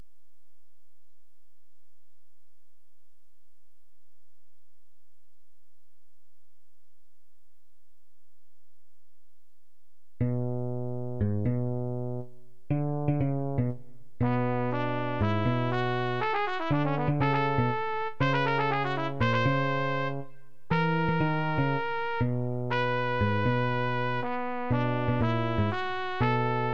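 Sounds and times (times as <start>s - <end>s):
bass: 10.2s - 26.7s
trumpet: 14.2s - 26.7s.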